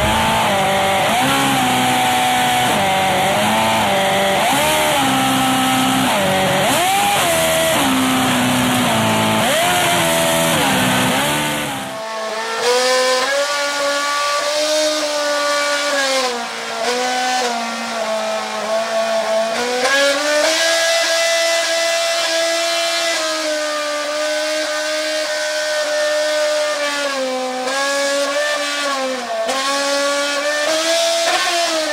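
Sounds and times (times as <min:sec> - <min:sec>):
revving engine producing musical pitches: 0:00.0 - 0:12.0
thinner higher-pitched engine continuing the tune: 0:00.0 - 0:31.9.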